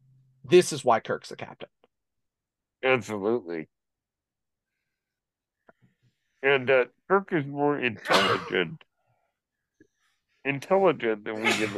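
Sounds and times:
speech: 0.5 - 1.8, 2.8 - 3.8, 6.4 - 8.9, 10.4 - 11.7
person sneezing: 8.0 - 8.6, 11.4 - 11.7.

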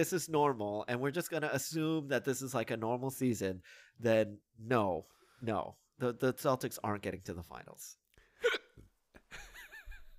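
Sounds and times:
speech: 0.0 - 8.0
hiccup: 8.4 - 8.8.

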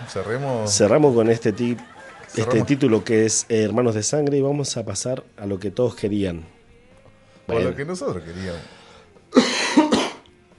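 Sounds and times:
laughter: 0.0 - 3.8
speech: 0.1 - 6.6, 7.5 - 9.5
person coughing: 9.3 - 10.2.

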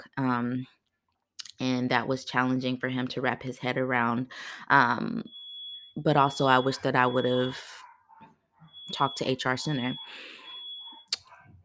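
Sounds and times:
speech: 0.2 - 0.8, 1.6 - 5.4, 6.0 - 7.8, 8.9 - 10.4
steady high electronic fire alarm tone: 4.8 - 7.9, 8.6 - 11.1
dog barking: 7.7 - 8.8, 10.9 - 11.6.

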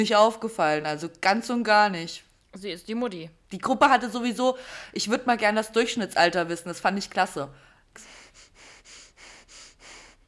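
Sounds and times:
speech: 0.0 - 8.2
person sniffling: 8.0 - 10.2.

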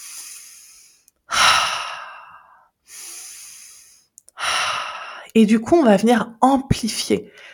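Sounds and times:
slow deep controlled breathing: 0.0 - 5.3
speech: 5.3 - 7.5.

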